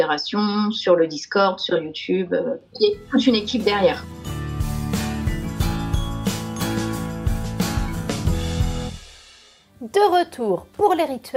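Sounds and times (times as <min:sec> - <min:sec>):
speech: 0:00.0 - 0:04.3, 0:09.9 - 0:11.3
short bright musical jingle with rhythmic beats and tonal chords: 0:03.1 - 0:08.8.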